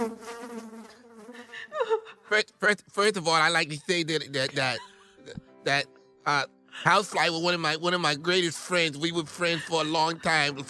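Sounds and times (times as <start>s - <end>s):
thin whining mosquito buzz: 0.0s - 1.8s
laughter: 1.5s - 2.6s, 3.3s - 5.8s, 6.8s - 7.3s, 8.8s - 10.6s
speech: 2.3s - 10.6s.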